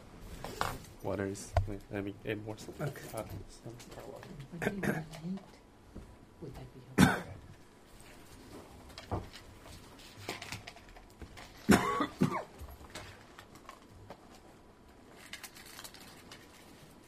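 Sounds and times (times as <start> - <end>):
speech: 0.6 - 5.6, 6.4 - 7.2
person coughing from phlegm down the wrong pipe: 4.6 - 5.1, 7.0 - 7.4, 11.6 - 12.6.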